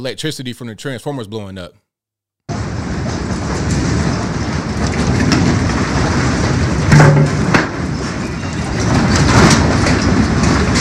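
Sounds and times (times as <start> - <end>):
speech: 0.0 - 1.8
earthquake rumbling: 2.5 - 10.7.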